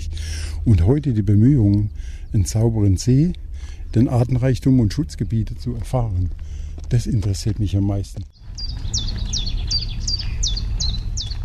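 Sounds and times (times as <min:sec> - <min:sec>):
low rumble: 0:00.0 - 0:11.4
speech: 0:00.6 - 0:08.8
bright high bird chirping call in meadows: 0:08.3 - 0:11.4.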